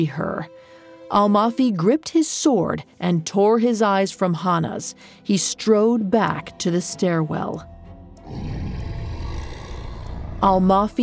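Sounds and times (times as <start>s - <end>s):
speech: 0.0s - 7.7s, 8.3s - 8.8s, 10.4s - 11.0s
monster roaring: 8.2s - 10.8s.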